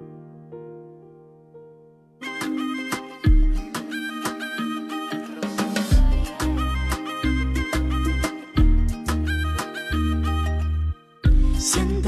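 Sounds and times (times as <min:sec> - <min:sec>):
instrumental song intro with bright melodic chords and punchy bass line: 0:02.2 - 0:12.0.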